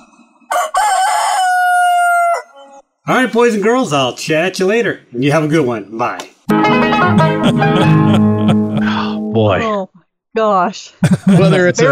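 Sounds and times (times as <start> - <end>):
rooster crowing loud: 0.5 - 2.8
speech: 3.1 - 6.3, 7.0 - 8.3, 9.4 - 11.9
laughter: 6.8 - 9.5, 11.0 - 11.9.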